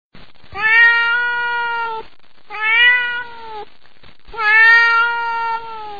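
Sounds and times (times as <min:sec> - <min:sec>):
cat meowing: 0:00.6 - 0:03.7, 0:04.4 - 0:05.9.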